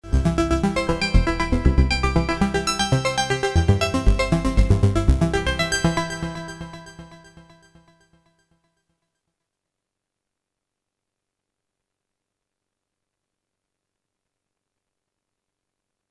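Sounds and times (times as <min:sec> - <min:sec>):
keyboards: 0:00.0 - 0:07.9.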